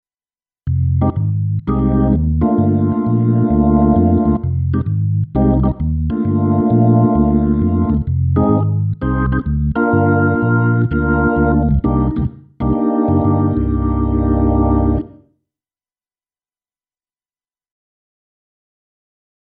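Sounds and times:
smooth jazz organ on Korg Grandstage: 0.7s - 15.2s.

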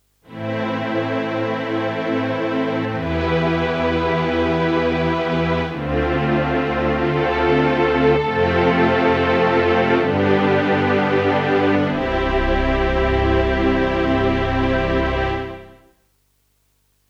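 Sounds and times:
artist strings on a keyboard: 0.3s - 15.9s.

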